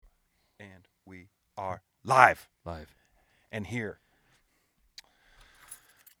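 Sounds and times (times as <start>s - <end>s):
speech: 1.6s - 4.0s
keys jangling: 5.4s - 6.1s.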